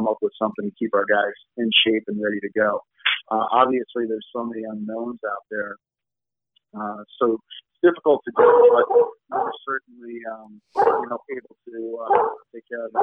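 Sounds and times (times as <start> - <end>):
speech: 0.1 - 5.9, 6.7 - 13.0
female Labrador watchdog barking: 8.4 - 9.6, 10.8 - 11.2, 12.0 - 13.0.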